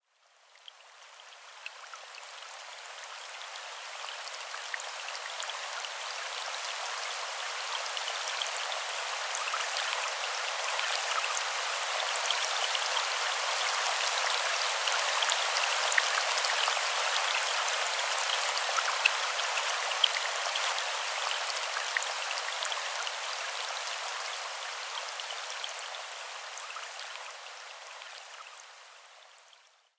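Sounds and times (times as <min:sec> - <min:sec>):
gentle rain: 0:00.0 - 0:29.9.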